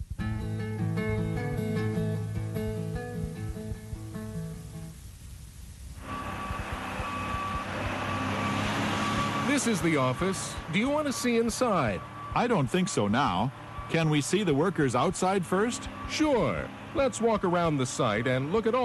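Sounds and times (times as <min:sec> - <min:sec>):
heavy cement truck engine rumbling and whining at a construction site: 0:00.0 - 0:18.8
cement truck machinery hissing: 0:05.9 - 0:18.8
cement truck reversing alarm beeping: 0:06.0 - 0:18.8
speech: 0:09.6 - 0:18.8.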